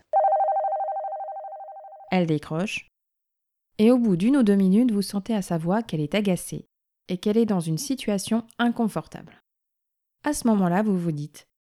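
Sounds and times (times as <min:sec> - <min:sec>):
telephone ringing with a warbling electronic trill: 0:00.2 - 0:02.1
speech: 0:02.1 - 0:02.9, 0:03.8 - 0:09.4, 0:10.2 - 0:11.5.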